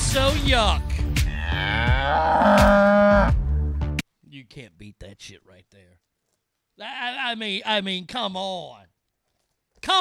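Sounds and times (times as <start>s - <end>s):
speech: 0.1s - 0.9s, 4.4s - 6.1s, 6.8s - 9.0s, 9.8s - 9.9s
cow mooing: 1.4s - 3.4s.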